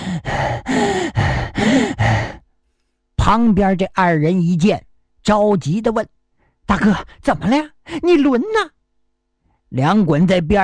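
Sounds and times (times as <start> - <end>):
man imitating exhausted heavy panting: 0.0 - 2.5
speech: 3.3 - 8.8, 9.7 - 10.6.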